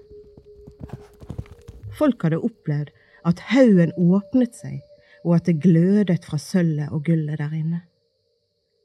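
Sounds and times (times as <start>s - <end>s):
horse hooves clip-clopping: 0.0s - 2.2s
speech: 2.0s - 7.9s.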